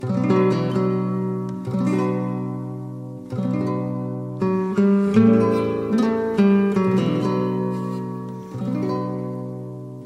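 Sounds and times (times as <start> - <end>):
guitar: 0.0 - 10.0.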